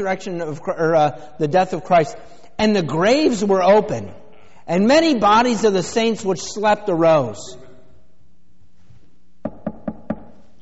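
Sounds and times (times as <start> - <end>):
speech: 0.0 - 7.6
sharp knocks on a door: 9.4 - 10.3.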